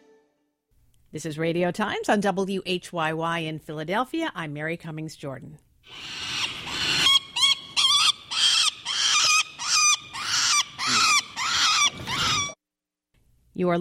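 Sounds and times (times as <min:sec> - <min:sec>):
speech: 0:01.1 - 0:06.2, 0:13.6 - 0:13.7
nesting pair of peregrine falcons alarm calls atop City Hall in Philadelphia: 0:05.9 - 0:12.6.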